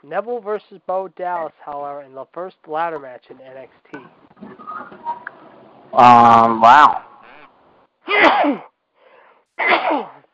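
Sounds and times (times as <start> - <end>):
speech: 0.0 - 5.3, 5.9 - 7.0, 9.6 - 10.2
person sneezing: 8.1 - 8.7, 9.6 - 10.3
faint breath intake: 9.0 - 9.5.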